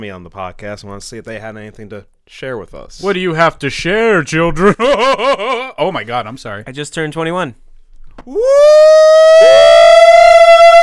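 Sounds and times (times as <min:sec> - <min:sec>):
speech: 0:00.0 - 0:07.6, 0:08.2 - 0:10.3
two voices harmonizing, imitating an air-raid siren: 0:08.5 - 0:10.8.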